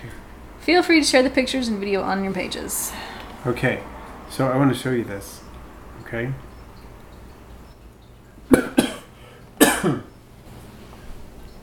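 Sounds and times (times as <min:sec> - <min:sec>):
speech: 0:00.0 - 0:05.4, 0:06.1 - 0:06.5, 0:09.8 - 0:10.1
person coughing: 0:08.5 - 0:10.1.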